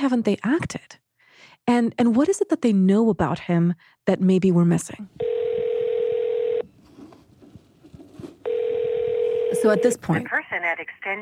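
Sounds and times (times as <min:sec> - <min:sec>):
speech: 0:00.0 - 0:01.0, 0:01.6 - 0:05.3, 0:09.6 - 0:11.2
telephone dialing tone on calls to Canadian government officials: 0:05.2 - 0:06.7, 0:08.5 - 0:10.1.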